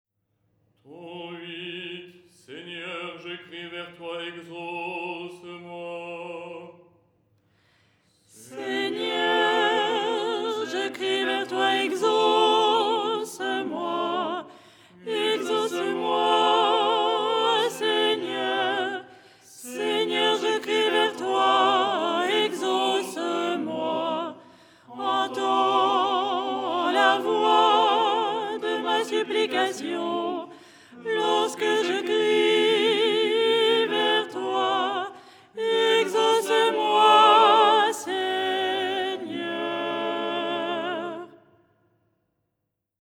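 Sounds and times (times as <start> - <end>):
soprano singing: 8.4 - 41.4.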